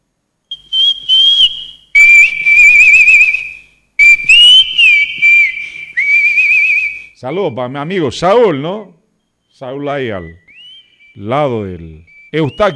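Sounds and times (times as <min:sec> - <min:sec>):
person whistling a melody: 0:00.5 - 0:07.2, 0:10.2 - 0:11.3, 0:12.0 - 0:12.7
speech: 0:07.2 - 0:09.0, 0:09.6 - 0:10.4, 0:11.2 - 0:12.7.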